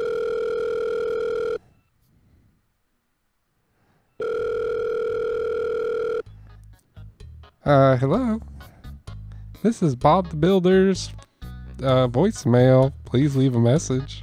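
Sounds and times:
telephone call ringback tones: 0.0 - 1.9, 4.2 - 6.3
speech: 7.7 - 8.5, 9.6 - 11.2, 11.8 - 14.2.

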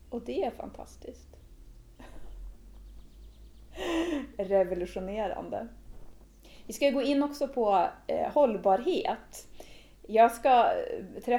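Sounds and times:
speech: 0.1 - 1.4, 3.8 - 5.8, 6.7 - 11.3
person on a sofa taking a deep breath in and out: 3.7 - 4.4.

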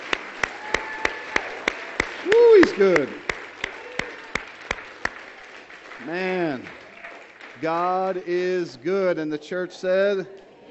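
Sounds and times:
sharp claps in a steady beat: 0.0 - 8.2
speech: 2.2 - 3.2, 6.1 - 6.8, 7.6 - 10.5.

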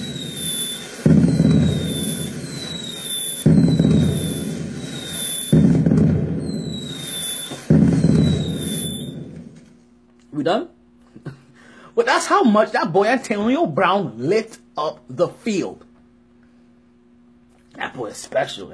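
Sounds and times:
fireworks rising whistle: 0.0 - 5.8, 6.4 - 9.6
fireworks booming bursts: 0.0 - 9.8
fireworks crackling rumble: 0.0 - 9.8
speech: 10.4 - 10.7, 12.1 - 15.9, 17.8 - 18.7.

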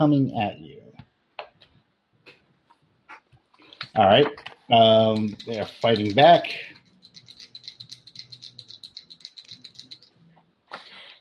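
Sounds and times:
speech: 0.0 - 0.7, 3.9 - 6.7
dice rolled for an attack rattling and clattering: 4.8 - 10.1.

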